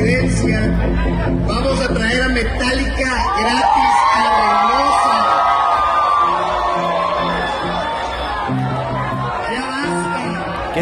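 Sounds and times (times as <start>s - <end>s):
rally crowd cheering and shouting wildly: 0.0s - 10.8s
people whooping in a crowd: 3.0s - 10.4s.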